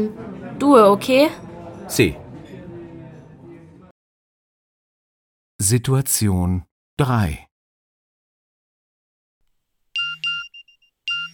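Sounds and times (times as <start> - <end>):
speech: 0.0 - 2.2, 5.6 - 7.5
phone text message alert chime: 10.0 - 11.3.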